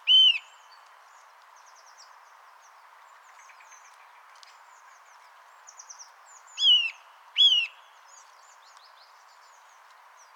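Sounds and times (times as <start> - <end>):
Eurasian nuthatch Sitta europaea calls: 0.0 - 0.5.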